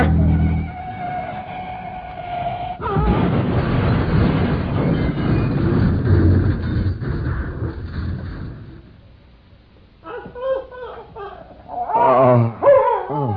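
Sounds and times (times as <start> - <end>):
car horn blaring: 0.0 - 2.4
roaring car engine: 0.0 - 2.8
long loud car crash: 0.0 - 9.2
dog barking and yelping: 10.0 - 13.3.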